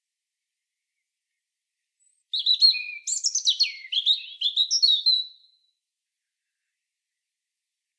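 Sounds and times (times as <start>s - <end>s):
European robin Erithacus rubecula singing: 2.0s - 5.7s.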